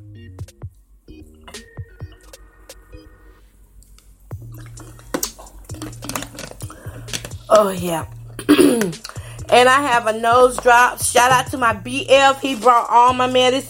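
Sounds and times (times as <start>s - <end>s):
wet gulping from a plastic water bottle: 4.3s - 9.5s
plastic water bottle crinkling: 4.4s - 7.7s, 8.8s - 9.2s
speech: 7.5s - 13.6s.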